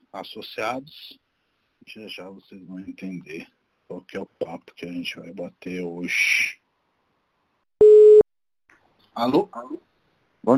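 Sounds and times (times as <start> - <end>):
speech: 0.1 - 1.2, 1.8 - 6.6, 9.2 - 10.5
telephone line beep while placing a phone call: 7.8 - 8.2.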